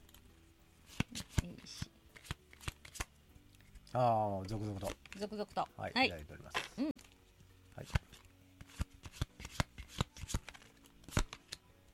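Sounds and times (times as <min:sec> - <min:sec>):
playing cards being shuffled: 0:00.0 - 0:05.4, 0:06.1 - 0:11.9
speech: 0:03.9 - 0:06.9.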